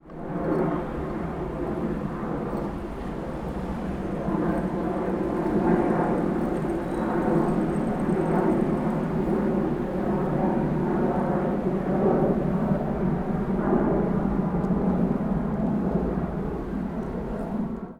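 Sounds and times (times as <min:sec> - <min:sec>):
airplane: 0:00.0 - 0:17.9.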